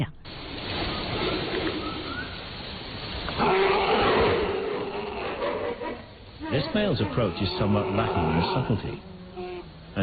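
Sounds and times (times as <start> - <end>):
steady outdoor hush: 0.0 - 10.0
giant panda bleating call during mating season: 3.4 - 9.7
speech: 6.6 - 9.1.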